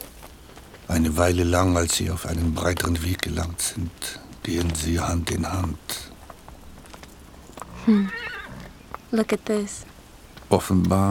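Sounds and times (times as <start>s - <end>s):
soft hiss: 0.0s - 11.0s
speech: 0.9s - 6.1s, 7.9s - 8.2s, 9.1s - 9.9s, 10.5s - 11.0s
horse neighing at a farm: 7.5s - 8.8s.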